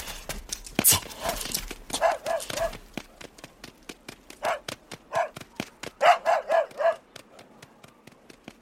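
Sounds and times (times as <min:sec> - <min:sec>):
dog footsteps pattering in a yard: 0:00.2 - 0:08.5
dog yelping barks: 0:01.9 - 0:02.8, 0:04.4 - 0:05.4, 0:06.0 - 0:07.0.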